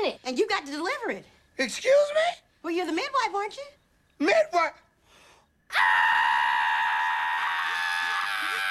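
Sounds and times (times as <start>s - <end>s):
speech: 0.1s - 4.8s, 5.7s - 6.6s
person screaming: 5.7s - 8.7s.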